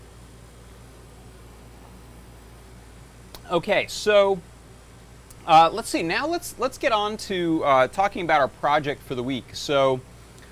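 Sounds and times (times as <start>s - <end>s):
steady low mechanical hum with broadband hiss: 0.0s - 10.4s
speech: 3.5s - 4.5s, 5.5s - 10.1s.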